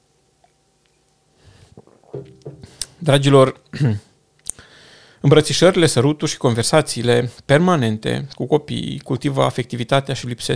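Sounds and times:
person softly sipping and slurping tea: 1.4s - 3.0s
person swallowing: 1.6s - 3.0s
speech: 3.0s - 4.1s, 5.2s - 10.5s.

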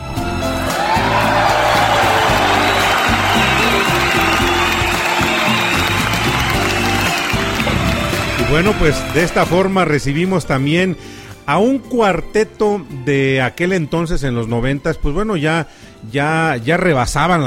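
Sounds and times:
crowd applauding: 0.4s - 9.9s
speech: 8.5s - 17.4s.

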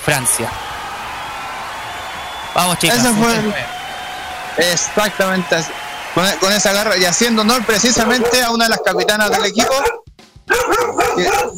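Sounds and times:
speech: 0.0s - 0.7s, 2.6s - 3.8s, 4.6s - 10.0s, 11.2s - 11.5s
dog barking: 8.0s - 11.5s.

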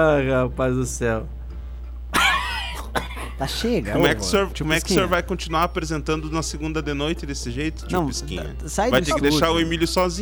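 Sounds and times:
speech: 0.0s - 1.4s, 3.4s - 10.2s
low steady hum: 0.0s - 10.2s
man clearing throat: 2.2s - 3.5s
man coughing: 2.2s - 3.5s.

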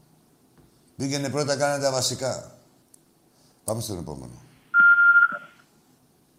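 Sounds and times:
speech: 1.0s - 2.6s, 3.7s - 4.5s
electronic phone-line tone as a call drops: 4.8s - 5.6s.

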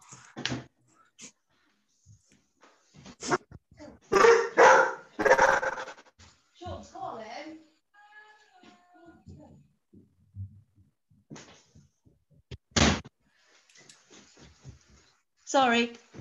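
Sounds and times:
puppy barking: 4.1s - 6.0s
speech: 15.5s - 16.0s.

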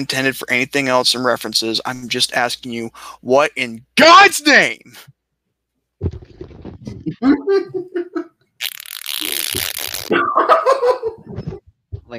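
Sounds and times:
speech: 0.0s - 5.1s, 7.1s - 8.2s, 9.5s - 12.1s
mouth-made fart noise: 6.0s - 7.2s, 8.6s - 10.4s
laughter: 6.8s - 8.4s, 10.2s - 11.6s.

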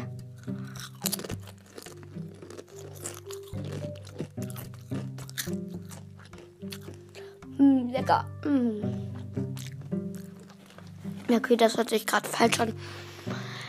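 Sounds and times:
crunching sour cream tortilla chips: 0.0s - 7.4s, 9.4s - 11.2s
steady tonal sound: 0.0s - 13.6s
speech: 7.6s - 9.5s, 11.3s - 13.1s.

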